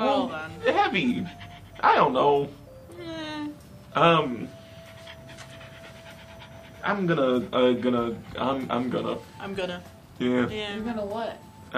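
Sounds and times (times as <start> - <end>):
dog panting: 0.0 - 2.7, 3.9 - 9.8
speech: 0.2 - 3.1, 3.9 - 4.6, 6.8 - 11.7.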